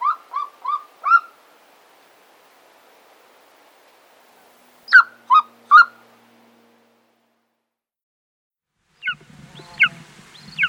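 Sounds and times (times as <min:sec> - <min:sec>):
Golden Eagle yelping calls: 0:00.0 - 0:01.4, 0:04.9 - 0:06.0.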